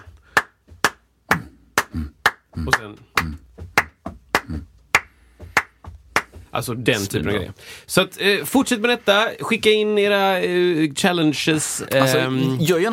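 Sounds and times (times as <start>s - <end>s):
sharp hand claps in a body-percussion rhythm: 0.0s - 6.5s
speech: 1.9s - 3.4s, 6.6s - 12.9s
heavier thumping foot stamps: 2.5s - 6.7s.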